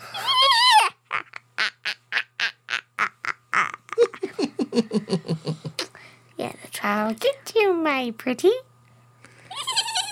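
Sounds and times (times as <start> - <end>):
person imitating a witch's cackle: 0.0 - 5.9, 9.5 - 10.1
speech: 6.9 - 8.7.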